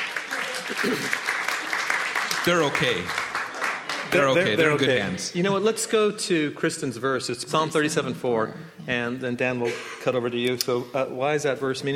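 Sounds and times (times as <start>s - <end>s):
audience clapping: 0.0s - 5.1s
speech: 0.7s - 1.3s, 2.4s - 3.2s, 4.0s - 11.9s.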